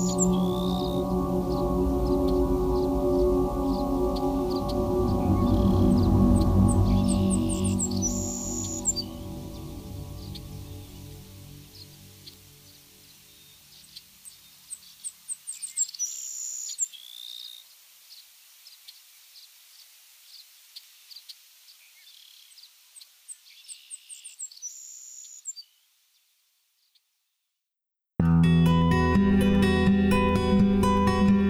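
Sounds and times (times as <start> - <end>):
low rumble: 0.0 - 12.3
Savannah Sparrow high thin song: 0.0 - 17.6, 20.3 - 27.0, 28.7 - 31.4.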